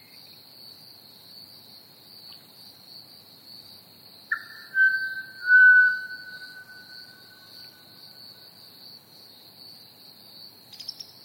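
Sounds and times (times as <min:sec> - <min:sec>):
high-pitched cricket chorus: 0:00.0 - 0:11.2
pied butcherbird long pure whistled note: 0:04.3 - 0:07.7.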